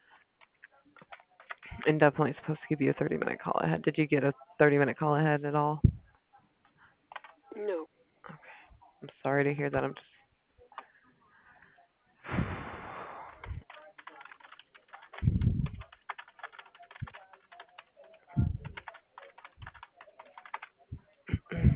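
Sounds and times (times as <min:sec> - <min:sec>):
typing on a computer keyboard: 0:00.4 - 0:01.8, 0:07.1 - 0:07.4, 0:13.5 - 0:20.9
speech: 0:01.8 - 0:05.9, 0:09.2 - 0:10.1.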